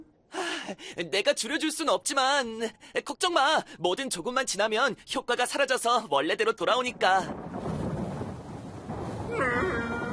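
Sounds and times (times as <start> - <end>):
speech: 0.7 - 7.6
rolling thunder of an approaching storm: 6.9 - 10.1
wavering tonal cry: 9.3 - 10.1.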